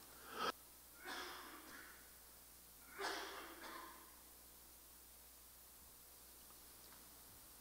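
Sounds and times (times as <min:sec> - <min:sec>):
person coughing after COVID: 0:00.3 - 0:02.0, 0:02.9 - 0:04.1.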